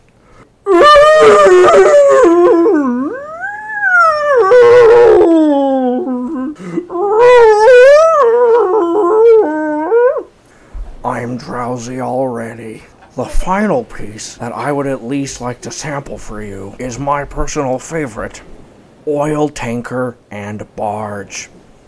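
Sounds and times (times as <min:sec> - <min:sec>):
whale wailing as larger whale catches it: 0:00.7 - 0:10.4
speech: 0:13.2 - 0:18.5, 0:19.1 - 0:21.6.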